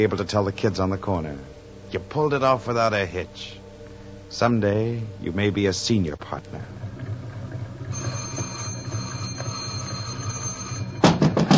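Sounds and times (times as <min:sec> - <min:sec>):
speech: 0:00.0 - 0:03.6, 0:04.3 - 0:06.8
electric doorbell rung by a caller at the door: 0:07.9 - 0:11.4.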